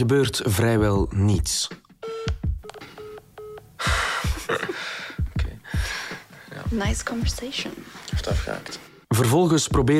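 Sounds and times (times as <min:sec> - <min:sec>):
speech: 0:00.0 - 0:01.8, 0:06.7 - 0:09.9
telephone keypad tones as a number is dialed: 0:02.0 - 0:03.6
laughter: 0:03.8 - 0:05.2.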